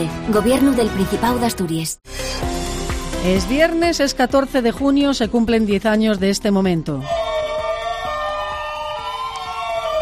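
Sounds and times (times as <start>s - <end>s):
speech: 0.0s - 2.5s, 3.2s - 7.2s
ambulance sirens wailing across a city: 7.0s - 10.0s.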